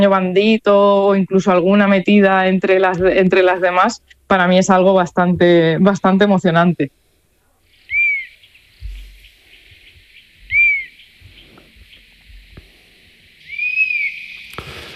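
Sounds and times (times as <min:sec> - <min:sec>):
speech: 0:00.0 - 0:07.0
low rumbles in outdoor background: 0:00.0 - 0:14.8
honey buzzard whistling: 0:07.7 - 0:12.1, 0:13.4 - 0:14.6.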